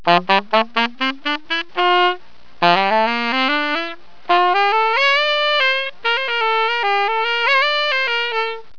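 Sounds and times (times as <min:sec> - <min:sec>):
saxophone: 0:00.0 - 0:08.7.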